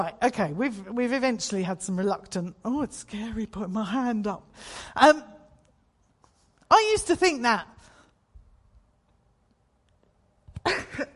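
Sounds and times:
speech: 0.0s - 5.4s, 6.7s - 7.7s, 10.6s - 11.1s
person in the audience coughing: 10.6s - 11.1s.

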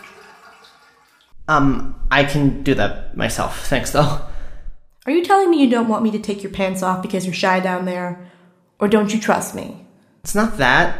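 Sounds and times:
shower water running: 0.0s - 1.4s
speech: 1.5s - 4.3s, 5.0s - 10.9s.

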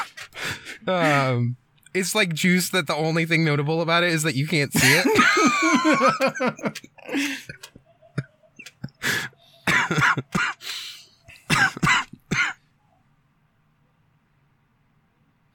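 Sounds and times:
speech: 0.8s - 7.7s
laughter: 4.8s - 10.4s
person coughing: 9.6s - 10.6s, 11.3s - 12.6s.

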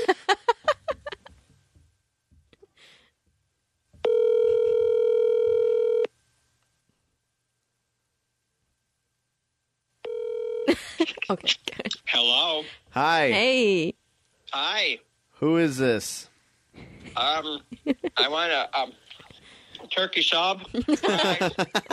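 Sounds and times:
laughter: 0.0s - 1.3s, 16.8s - 18.5s, 20.7s - 21.9s
phone ringback tone: 4.0s - 6.1s, 10.0s - 10.7s
speech: 11.1s - 13.9s, 14.5s - 16.3s, 17.2s - 19.0s, 19.9s - 21.9s.

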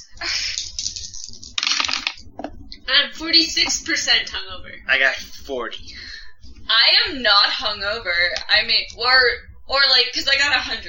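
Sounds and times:
percentile dice clattering across a hard tabletop: 0.5s - 2.2s
speech: 3.0s - 5.9s, 6.7s - 10.8s.

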